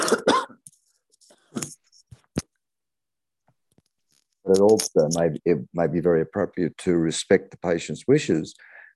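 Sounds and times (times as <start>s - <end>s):
person coughing: 0.0s - 0.6s
throat clearing: 0.0s - 0.6s
speech: 4.5s - 8.8s.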